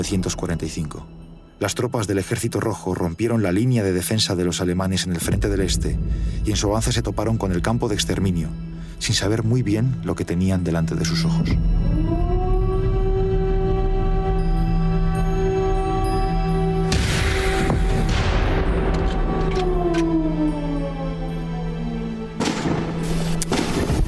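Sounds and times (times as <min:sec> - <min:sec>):
speech: 0:00.0 - 0:11.9
continuous wavering siren-like drone: 0:10.9 - 0:17.0, 0:18.8 - 0:22.4
cannon fire: 0:16.9 - 0:19.0, 0:22.4 - 0:24.0
rifle fire: 0:22.4 - 0:24.0.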